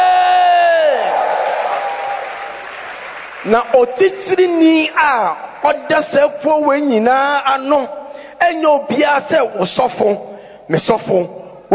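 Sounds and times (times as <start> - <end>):
church audience cheering and shouting: 0.0 - 2.7
church audience clapping: 0.9 - 4.6
speech: 3.4 - 11.7.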